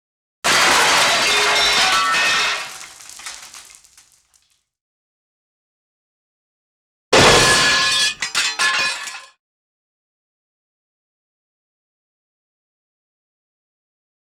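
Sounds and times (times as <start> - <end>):
medium glass impacts: 0.5 - 4.0, 7.2 - 9.3.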